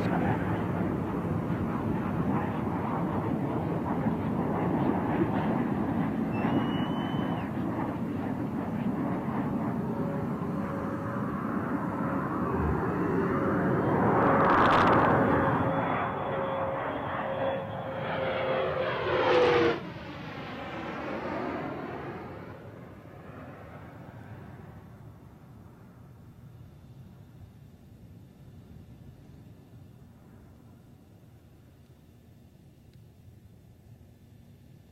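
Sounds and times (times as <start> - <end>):
space shuttle rolling out on runway after landing: 0.0 - 26.4
thin whine of space shuttle falling in pitch: 10.0 - 22.9.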